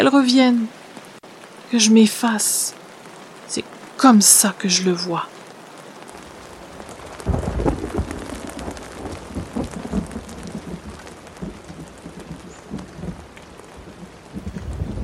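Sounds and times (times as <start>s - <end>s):
speech: 0.0s - 0.8s, 1.7s - 2.8s, 3.5s - 5.4s
heavy rain in a storm: 0.0s - 15.0s
deep rumbling thunder: 6.3s - 15.0s.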